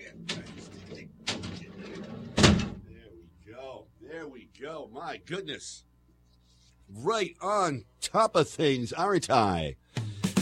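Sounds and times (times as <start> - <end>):
large heavy door closing: 0.0 - 2.8
speech: 4.6 - 5.9, 6.9 - 9.8.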